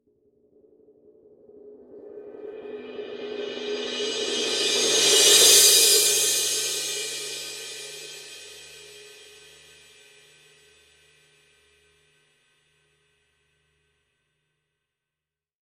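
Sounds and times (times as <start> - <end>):
heavy full crash cymbal roll on a 19 reflector: 2.6 - 11.0.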